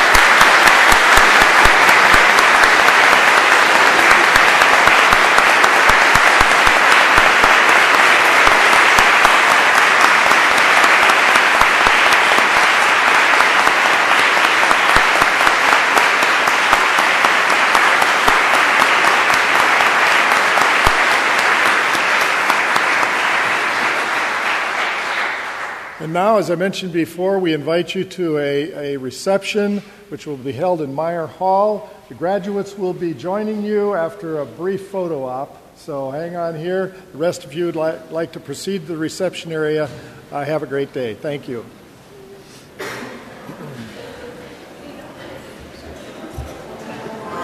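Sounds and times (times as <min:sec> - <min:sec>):
large audience applause at graduation ceremony: 0:00.0 - 0:26.0
speech: 0:26.4 - 0:41.8.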